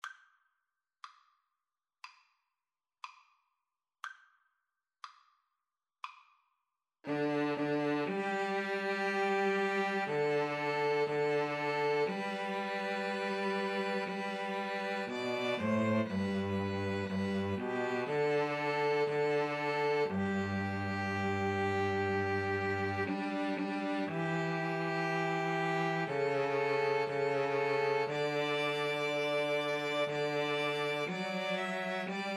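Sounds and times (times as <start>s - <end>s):
string trio playing national anthem: 7.1s - 32.3s.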